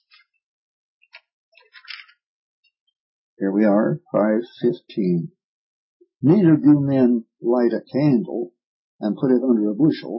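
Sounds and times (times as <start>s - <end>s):
thin bible paper pages being flipped: 1.6s - 2.1s
speech: 3.4s - 5.4s, 6.2s - 10.1s.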